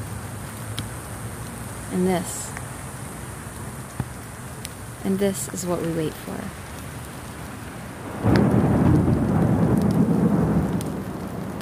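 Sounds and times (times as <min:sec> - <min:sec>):
steady monsoon rain: 0:00.0 - 0:11.6
speech: 0:01.9 - 0:02.6, 0:05.0 - 0:06.6
deep loud rumble of monsoon thunder: 0:08.0 - 0:11.6.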